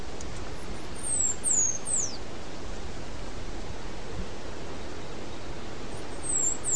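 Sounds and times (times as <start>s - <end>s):
dense low steady noise: 0.0s - 6.7s
Half-collared Sparrow Arremon semitorquatus song: 0.9s - 2.2s, 5.9s - 6.7s.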